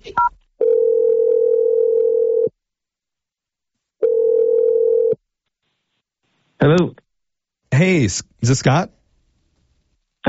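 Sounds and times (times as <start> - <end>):
steady telephone tone: 0.6 - 2.5, 4.0 - 5.2
speech: 6.6 - 7.0, 8.0 - 9.0.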